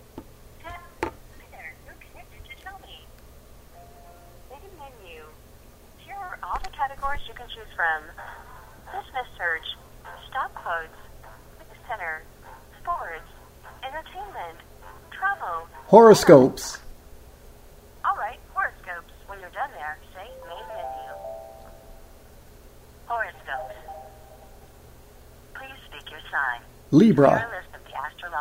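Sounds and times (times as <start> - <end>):
voices on a phone line through a speakerphone: 0.6 - 3.1, 4.4 - 5.4, 6.0 - 16.4, 18.0 - 21.6, 23.1 - 24.5, 25.6 - 28.3
speech: 7.3 - 9.8, 14.0 - 16.8, 26.9 - 27.5
thin electronic dialing tones and beeps through a phone speakerphone: 20.3 - 21.8.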